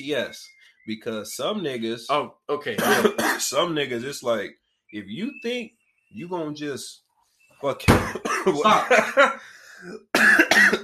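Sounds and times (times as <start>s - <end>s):
speech: 0.0s - 7.0s, 7.6s - 10.8s
harsh loud coughs: 2.7s - 3.6s, 8.0s - 9.2s, 9.8s - 10.8s
laughter: 7.9s - 9.5s.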